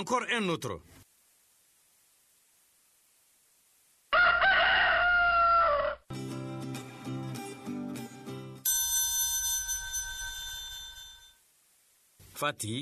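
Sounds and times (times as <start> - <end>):
speech: 0.0 - 1.0, 12.4 - 12.8
rooster crowing: 4.1 - 6.1
sustained ringing bell-like tone: 8.6 - 11.4.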